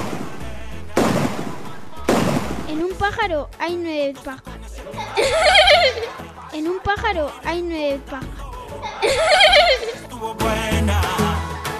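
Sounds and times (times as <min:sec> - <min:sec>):
hunter firing a shotgun: 0:00.0 - 0:02.8
speech: 0:02.7 - 0:04.5, 0:05.2 - 0:08.4, 0:09.0 - 0:11.2
laughter: 0:04.8 - 0:07.2, 0:08.7 - 0:10.1.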